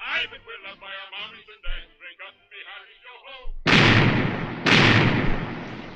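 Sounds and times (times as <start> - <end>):
speech: 0.2 - 3.6
continuous noisy rumble: 3.7 - 5.9
heavy cannon blast from a pirate galleon firing a broadside: 3.7 - 5.9.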